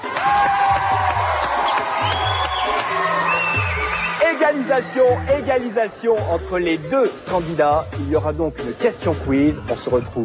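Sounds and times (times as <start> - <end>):
studio audience clapping for a TV game show winner: 0.0 - 5.7
speech: 4.6 - 10.2.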